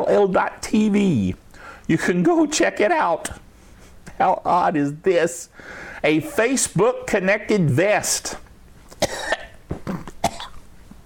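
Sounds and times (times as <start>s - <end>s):
speech: 0.0s - 3.4s, 4.2s - 8.4s
sharp dry coughs: 9.0s - 10.6s.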